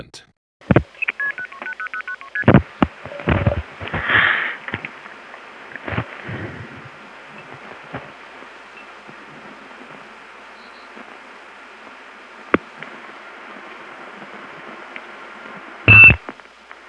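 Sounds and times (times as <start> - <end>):
speech: 0.0 - 0.3
phone line noise: 1.0 - 4.0, 15.9 - 16.2
touch-tone beeps of a phone number being dialed: 15.9 - 16.2.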